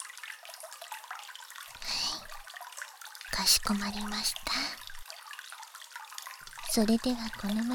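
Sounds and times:
water rinsing a man's hair during a salon-style hair wash: 0.0 - 7.7
speech: 3.4 - 4.8, 6.8 - 7.7.

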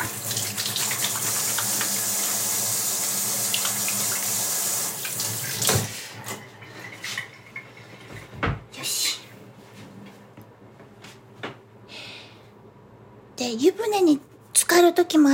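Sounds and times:
water running from a tap while washing hands: 0.0 - 7.9
speech: 13.4 - 15.3.

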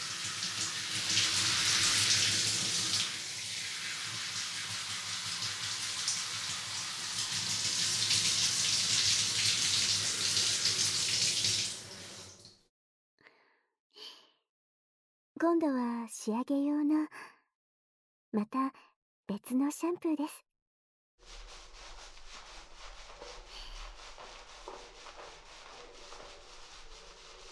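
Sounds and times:
rushing water rinsing head spa oil out of hair: 0.0 - 12.5, 21.2 - 27.5
speech: 15.4 - 17.3, 18.3 - 20.5.

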